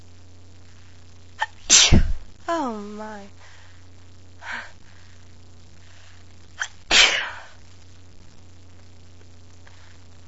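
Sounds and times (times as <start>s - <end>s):
person sneezing: 1.4s - 2.2s, 6.6s - 7.6s
speech: 1.7s - 3.4s.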